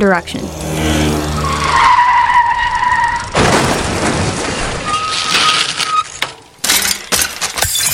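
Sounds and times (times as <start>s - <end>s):
motorbike tyre squeal while skidding: 1.2s - 3.3s, 4.8s - 6.2s
crash of motorbike colliding with a woman on a bicycle: 2.9s - 7.9s
motorbike mirrors shattering: 3.3s - 7.9s
scraping and sliding noise: 4.3s - 7.8s.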